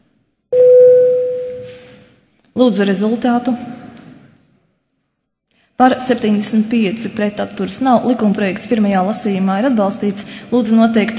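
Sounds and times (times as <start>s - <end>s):
electronic bell tone calling members of a parliament to a vote: 0.5s - 1.8s
speech: 2.6s - 3.8s, 5.8s - 11.1s.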